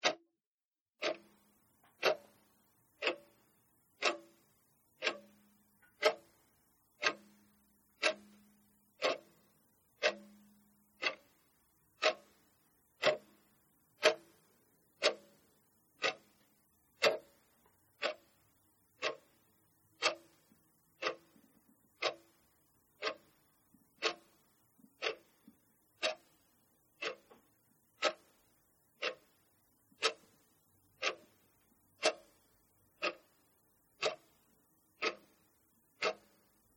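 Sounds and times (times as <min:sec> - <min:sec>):
wall hanging clock tick tock: 0:00.0 - 0:00.2, 0:01.0 - 0:36.7.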